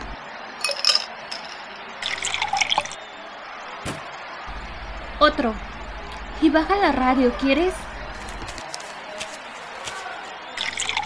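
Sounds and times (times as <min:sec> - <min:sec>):
whisky pouring from a bottle into a glass: 0:00.7 - 0:03.0, 0:10.6 - 0:11.0
speech: 0:05.2 - 0:05.7, 0:06.4 - 0:07.9.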